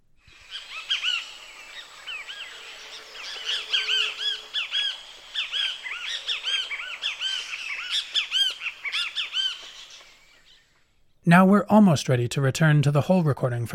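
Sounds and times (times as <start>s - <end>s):
great kiskadee calls: 0.2s - 11.0s
bird chatter: 0.3s - 11.0s
speech: 11.3s - 13.7s.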